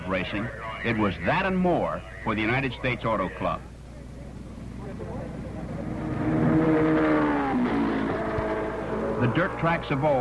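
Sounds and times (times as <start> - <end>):
speech: 0.1 - 3.7, 9.2 - 10.1
open-wheeled 1,350-pound championship race cars roaring past at high speed: 4.2 - 10.1.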